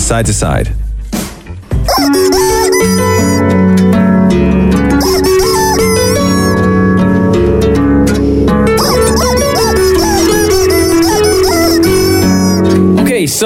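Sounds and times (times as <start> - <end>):
speech: 0.1 - 0.8, 2.0 - 3.8
steady backing track: 1.7 - 13.4
rubber chicken squeezed by a man squawking a song melody: 1.9 - 3.6, 4.9 - 7.2, 8.7 - 12.8.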